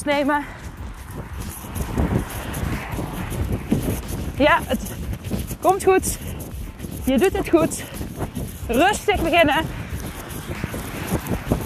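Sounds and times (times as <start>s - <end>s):
speech: 0.0s - 0.6s, 4.4s - 5.0s, 5.6s - 6.4s, 7.1s - 8.0s, 8.7s - 9.8s
wind buffeting the microphone outdoors: 0.0s - 11.6s.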